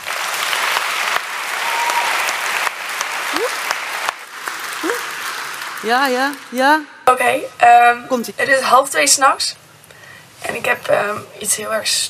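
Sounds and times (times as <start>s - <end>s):
audience applause for an arriving guest: 0.0s - 6.9s
whistles and vocal whoops from a crowd: 1.6s - 2.3s
speech: 5.8s - 9.6s, 10.5s - 12.0s.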